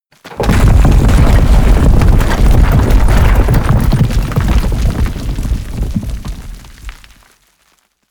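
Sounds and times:
large roll drop: 0.2 - 7.1.

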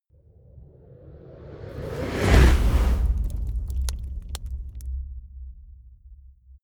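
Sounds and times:
fire torch igniting whoosh: 1.7 - 4.8.

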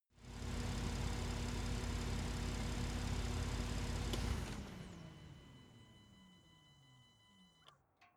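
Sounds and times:
sports car engine shutting off outside: 0.2 - 7.2.

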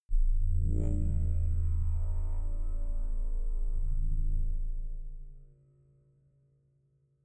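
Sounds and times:
soft crushed bass growl: 0.1 - 5.5.

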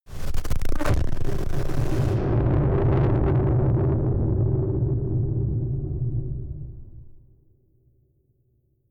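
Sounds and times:
distorted explosions: 0.1 - 7.2.

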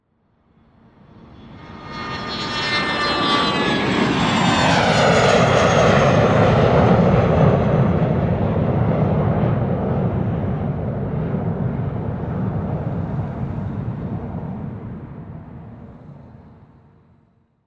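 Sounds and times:
small DC 9 jet taking off: 1.1 - 16.9.

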